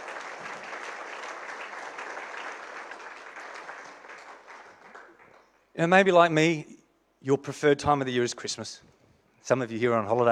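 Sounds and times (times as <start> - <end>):
audience applause: 0.0 - 5.6
speech: 5.8 - 10.2.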